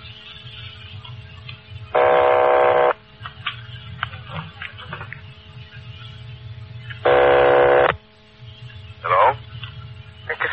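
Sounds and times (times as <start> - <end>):
low steady hum: 0.0 - 10.5
buzzing telephone ring tone on a long-distance line: 2.0 - 3.0, 7.0 - 8.0.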